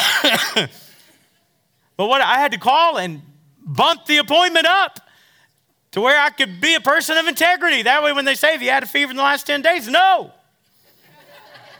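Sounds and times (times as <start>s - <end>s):
person coughing: 0.0s - 1.0s
speech: 0.4s - 0.9s, 2.0s - 5.0s, 5.9s - 10.4s
laughter: 10.9s - 11.7s.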